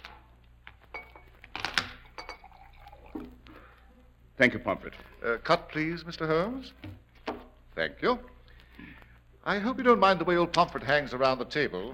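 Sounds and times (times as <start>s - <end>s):
faint hum: 0.0s - 11.9s
light glassy clinks: 0.9s - 1.4s, 2.1s - 2.9s
drink being poured into a glass: 1.8s - 3.7s
speech: 4.4s - 7.0s, 7.8s - 8.3s, 9.5s - 11.9s.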